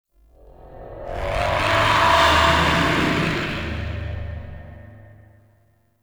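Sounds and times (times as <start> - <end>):
exterior sky screech ambience: 0.2 - 5.7.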